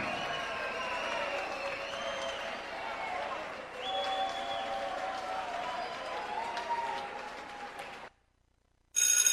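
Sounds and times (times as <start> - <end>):
whistles: 0.0 - 6.2
large audience applauding: 0.0 - 8.1.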